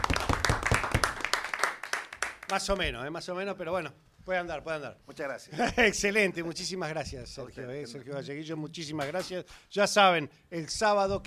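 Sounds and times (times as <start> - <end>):
audience applause: 0.0 - 2.6
speech: 2.5 - 11.2.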